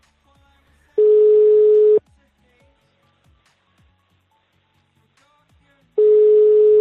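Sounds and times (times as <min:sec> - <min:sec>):
ringback tone of an unanswered telephone call: 0:01.0 - 0:02.0, 0:06.0 - 0:06.8.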